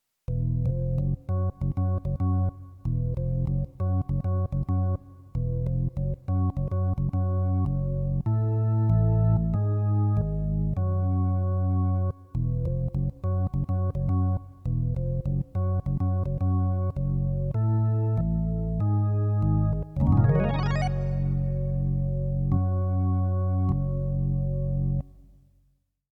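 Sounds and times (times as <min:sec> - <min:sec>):
Hammond B3 organ: 0:00.3 - 0:25.1.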